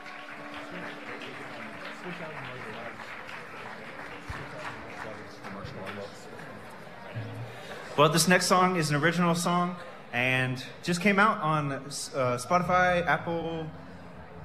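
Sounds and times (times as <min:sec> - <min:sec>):
live audience applauding a band at a live music show: 0:00.0 - 0:08.7
crowd voices: 0:00.0 - 0:14.4
speech: 0:00.8 - 0:03.3, 0:08.0 - 0:13.8.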